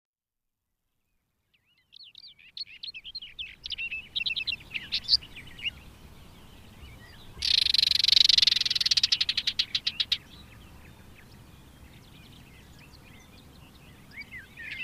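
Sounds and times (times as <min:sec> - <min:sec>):
barred warbler song: 0:01.0 - 0:14.8.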